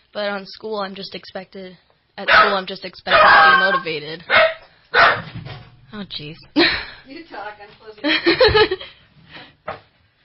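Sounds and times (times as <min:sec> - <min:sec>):
speech: 0:00.1 - 0:05.3, 0:05.9 - 0:09.0
male dog barking: 0:02.2 - 0:05.3
laughter: 0:08.0 - 0:09.0.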